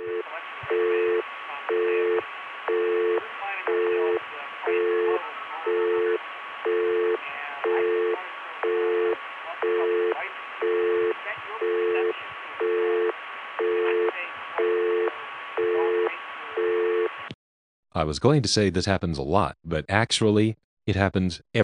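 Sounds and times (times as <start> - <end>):
talkable busy signal from a crossbar PBX: 0.0 - 17.1
speech: 18.0 - 21.6.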